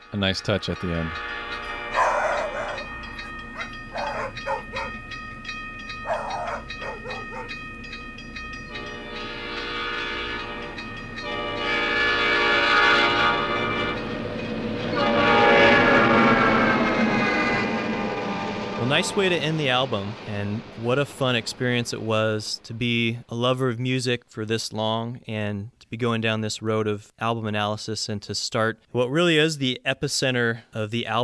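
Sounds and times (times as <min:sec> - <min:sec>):
speech: 0:00.1 - 0:01.6, 0:19.0 - 0:31.2
loud sustained train whistle: 0:00.1 - 0:05.0, 0:08.7 - 0:14.2, 0:14.8 - 0:19.6
two pet dogs barking: 0:01.9 - 0:05.2, 0:06.0 - 0:07.6.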